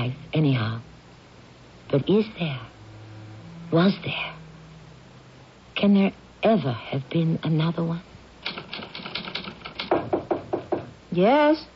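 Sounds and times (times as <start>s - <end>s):
speech: 0.0s - 0.9s, 1.9s - 2.7s, 3.7s - 4.4s, 5.8s - 8.6s, 11.2s - 11.7s
mechanical typewriter keystrokes: 8.4s - 10.1s.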